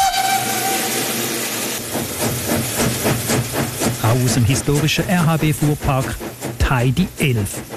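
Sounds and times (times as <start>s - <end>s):
steam locomotive whistle: 0.0s - 1.6s
rhythmic steam locomotive puffing: 0.0s - 7.7s
steam hissing from a steam locomotive: 0.0s - 7.7s
speech: 4.1s - 7.7s.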